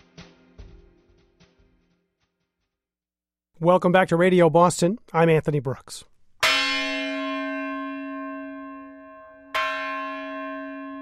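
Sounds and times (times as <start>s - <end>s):
speech: 3.6s - 6.1s
bell of a 100-foot red lightship docked in East Boston: 6.4s - 11.0s.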